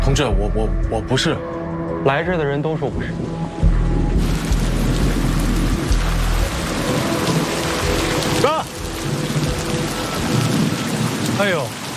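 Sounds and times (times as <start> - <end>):
speech: 0.1 - 3.6, 11.4 - 11.9
deep rumble of thunder: 2.9 - 11.9
heavy rain pouring steadily: 2.9 - 11.9.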